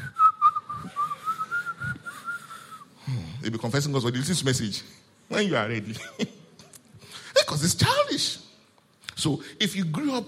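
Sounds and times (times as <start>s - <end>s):
person whistling a wavering melody: 0.0s - 2.9s
speech: 3.4s - 6.4s, 7.5s - 8.4s, 9.2s - 10.2s.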